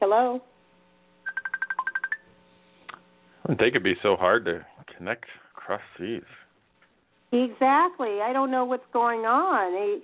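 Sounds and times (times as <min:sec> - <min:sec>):
speech: 0:00.1 - 0:00.5, 0:03.5 - 0:06.4, 0:07.3 - 0:10.0
telephone keypad tones dialing a long-distance number: 0:01.3 - 0:02.3.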